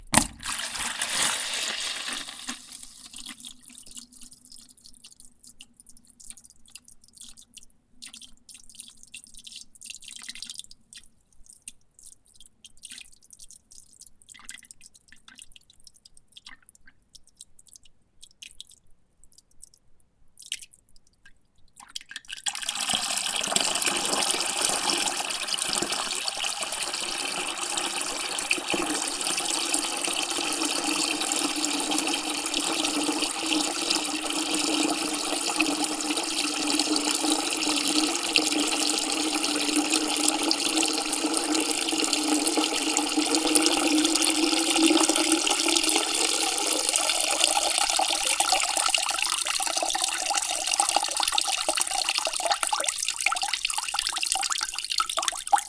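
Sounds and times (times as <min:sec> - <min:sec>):
water poured from basin to bucket: 0:00.0 - 0:05.0, 0:22.3 - 0:55.6.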